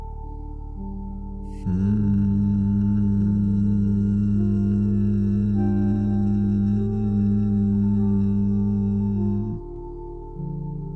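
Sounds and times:
faint tone: 0:00.0 - 0:10.9
low steady hum on an exhale: 0:01.6 - 0:10.0.

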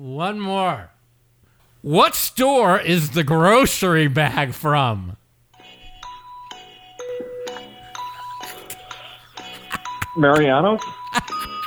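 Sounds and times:
speech: 0:00.0 - 0:01.0, 0:01.8 - 0:05.2, 0:10.2 - 0:11.0
bright electronic game-show chime during a quiz round: 0:05.6 - 0:11.6.

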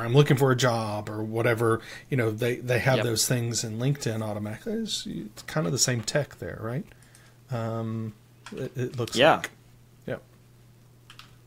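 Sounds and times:
speech: 0:00.0 - 0:10.3
steady low electrical hum: 0:00.0 - 0:11.4
faint keyboard clicks while typing a hashtag: 0:11.1 - 0:11.4.

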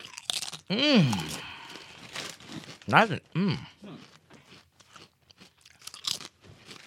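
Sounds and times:
thick homemade-style seasoned potato chips being bitten and chewed: 0:00.0 - 0:06.8
people talking: 0:00.7 - 0:01.3, 0:02.9 - 0:04.0.

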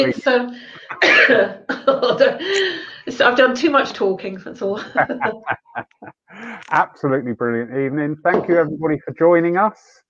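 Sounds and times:
speech: 0:00.0 - 0:10.0
person coughing: 0:00.9 - 0:01.6
laughter: 0:04.8 - 0:06.3.

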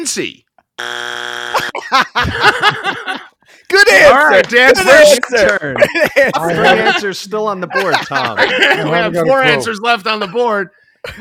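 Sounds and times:
speech: 0:00.0 - 0:01.1, 0:03.7 - 0:11.1
loud harsh game show buzzer: 0:00.8 - 0:01.8
laughter: 0:01.6 - 0:03.4, 0:04.5 - 0:09.5, 0:10.1 - 0:11.1
lively excited-sounding voices: 0:03.7 - 0:10.1.

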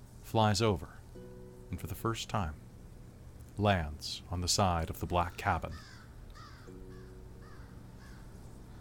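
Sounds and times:
hiss: 0:00.0 - 0:08.7
speech: 0:00.3 - 0:01.0, 0:01.7 - 0:02.6, 0:03.6 - 0:05.9
crow perched on the side of a cabin cawing: 0:05.4 - 0:08.7.

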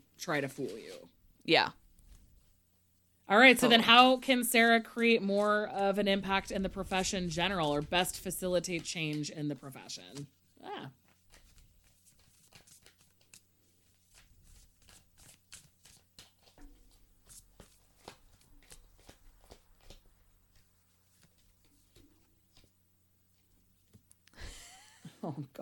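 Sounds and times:
low hum: 0:00.0 - 0:25.6
speech: 0:00.2 - 0:01.8, 0:03.3 - 0:11.0, 0:25.3 - 0:25.6
tarot cards being shuffled back into the deck: 0:05.3 - 0:10.4, 0:11.0 - 0:24.2.

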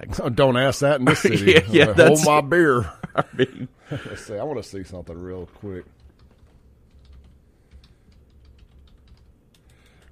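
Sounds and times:
speech: 0:00.0 - 0:06.0
low hum: 0:00.0 - 0:10.1
laughter: 0:01.1 - 0:04.3
typing a search on a computer keyboard: 0:05.2 - 0:10.1.

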